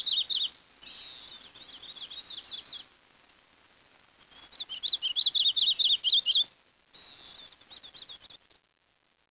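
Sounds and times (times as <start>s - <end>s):
bird chirping: 0.0s - 2.9s, 4.3s - 8.4s.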